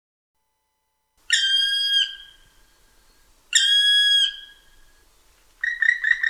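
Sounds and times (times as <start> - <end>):
black woodpecker ringing whistled calls in a beech forest: 1.3 - 6.2.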